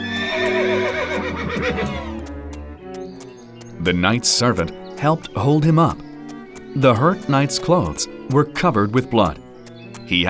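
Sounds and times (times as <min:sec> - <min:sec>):
horse whinnying while ridden through a forest: 0:00.0 - 0:02.2
horse hooves clip-clopping at a slow walking pace through a forest: 0:00.0 - 0:10.2
speech: 0:00.4 - 0:02.1, 0:03.8 - 0:06.0, 0:06.8 - 0:09.4, 0:10.1 - 0:10.2.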